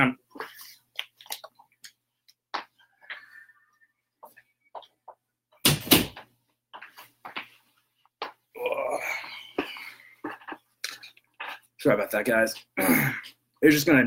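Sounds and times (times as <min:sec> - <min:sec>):
speech: 0:00.0 - 0:00.2, 0:11.8 - 0:14.0
loud door slam: 0:05.6 - 0:06.2.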